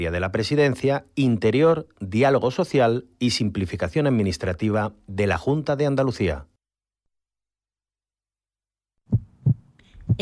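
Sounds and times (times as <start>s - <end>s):
speech: 0.0s - 6.5s, 10.1s - 10.2s
heartbeat sound effect with deep thumps: 9.1s - 10.2s.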